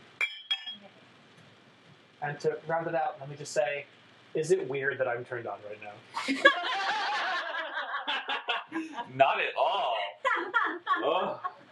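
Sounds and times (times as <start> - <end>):
glass touching glass in a toast: 0.2 - 0.9
speech: 2.2 - 7.2, 9.0 - 10.0
laughter: 6.2 - 9.2, 10.3 - 11.7.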